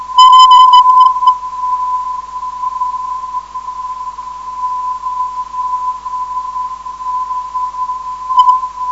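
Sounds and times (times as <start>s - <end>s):
358 kHz non-directional radio beacon signal: 0.2s - 1.5s, 8.3s - 8.7s.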